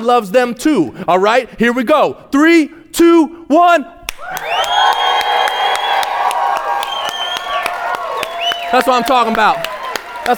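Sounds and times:
speech: 0.0s - 4.7s, 8.7s - 9.7s
audience clapping: 4.1s - 10.3s
loud audience cheering and yelling: 4.2s - 10.3s
piercing whistles from the audience: 4.4s - 6.2s, 6.8s - 9.0s.

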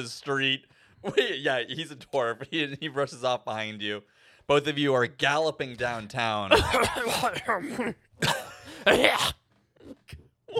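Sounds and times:
speech: 0.0s - 10.5s
harsh raspy coughing: 6.5s - 10.5s.

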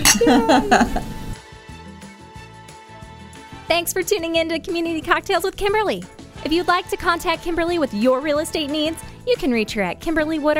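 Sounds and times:
glasses clinking in a toast: 0.0s - 0.7s
laughter: 0.0s - 1.2s
speech: 0.2s - 1.2s, 3.7s - 10.5s.

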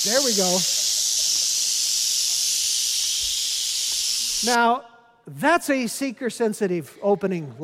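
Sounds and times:
speech: 0.0s - 0.8s, 4.4s - 7.6s
rattlesnakes shaking their tails: 0.0s - 4.6s.

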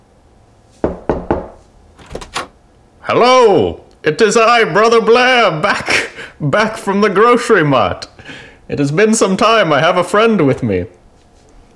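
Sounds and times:
faint rustling shuffle: 0.4s - 0.9s, 11.0s - 11.7s
knocking on a door: 0.8s - 1.6s
speech: 3.1s - 11.0s.

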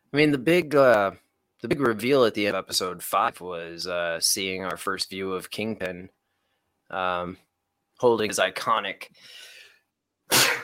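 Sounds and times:
speech: 0.1s - 6.2s, 6.9s - 9.5s
sharp inhale: 9.2s - 9.8s
allergic person sneezing: 10.3s - 10.6s.

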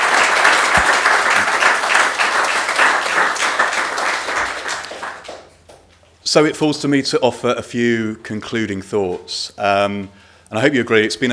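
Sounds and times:
audience applause for panelists at a panel session: 0.0s - 5.6s
speech: 6.3s - 11.3s.

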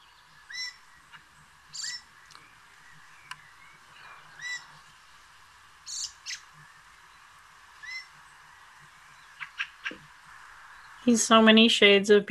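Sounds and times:
fieldfare giving harsh chattering calls: 0.5s - 2.4s, 3.1s - 4.8s, 5.8s - 6.6s, 7.8s - 8.2s, 9.2s - 10.1s
speech: 11.1s - 12.2s.

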